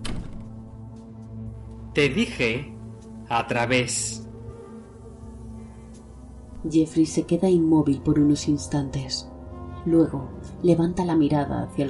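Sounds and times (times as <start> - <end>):
apartment door shutting with a solid thud: 0.0 - 0.6
speech: 2.0 - 2.7, 3.3 - 4.3, 6.6 - 11.8.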